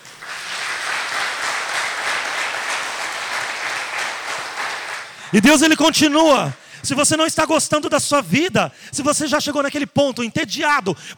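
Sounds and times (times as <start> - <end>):
congregation applauding: 0.0 - 6.6
speech: 5.3 - 11.1.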